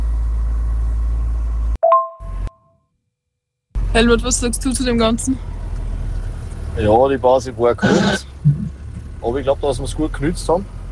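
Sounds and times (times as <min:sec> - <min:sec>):
car engine drone inside a car: 0:00.0 - 0:02.5, 0:03.8 - 0:10.9
electronic chime tones inside a car: 0:01.8 - 0:02.5
speech: 0:03.9 - 0:05.6, 0:06.8 - 0:08.3, 0:09.2 - 0:10.8.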